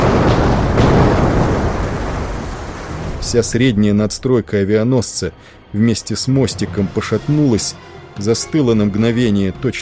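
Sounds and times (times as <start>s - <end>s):
several dull powerful explosions at sea: 0.0s - 4.3s
speech: 3.3s - 9.8s.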